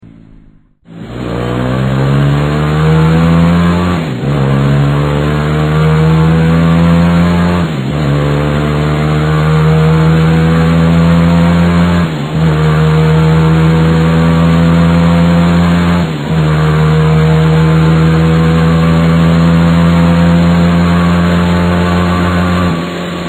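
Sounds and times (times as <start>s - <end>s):
engine exhaust: 0.0s - 23.2s.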